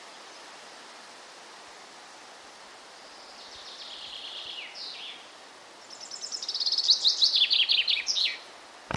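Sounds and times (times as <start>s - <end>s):
common chaffinch Fringilla coelebs song: 2.8s - 8.6s.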